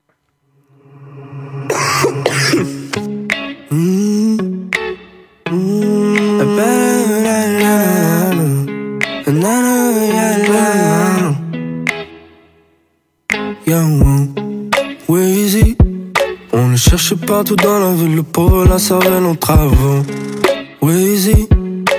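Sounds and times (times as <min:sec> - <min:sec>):
processed autotune-like lead vocal singing: 0:00.6 - 0:04.8, 0:05.5 - 0:11.5, 0:13.6 - 0:14.4, 0:16.5 - 0:21.6
steady pop backing track with hip-hop feel: 0:01.7 - 0:12.6, 0:13.3 - 0:21.9
speech: 0:17.1 - 0:21.4.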